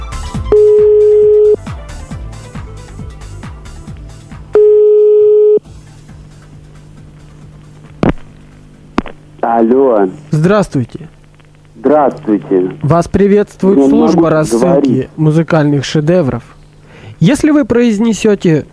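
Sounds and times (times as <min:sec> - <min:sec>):
telephone ringing tones while a call is placed: 0:00.5 - 0:01.7, 0:04.5 - 0:05.7
speech: 0:09.5 - 0:11.2, 0:11.8 - 0:16.6, 0:17.2 - 0:18.7.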